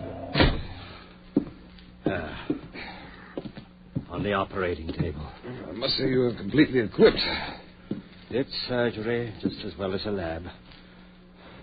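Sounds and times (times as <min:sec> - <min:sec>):
low hum: 0:00.0 - 0:11.6
heavy door kicked shut: 0:00.3 - 0:00.8
speech: 0:04.2 - 0:07.6, 0:08.3 - 0:10.6.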